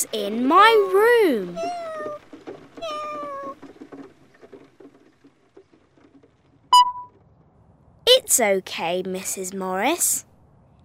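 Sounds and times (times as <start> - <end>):
speech: 0.0 - 1.9, 8.3 - 10.3
cat meowing: 1.6 - 2.2, 2.8 - 3.6.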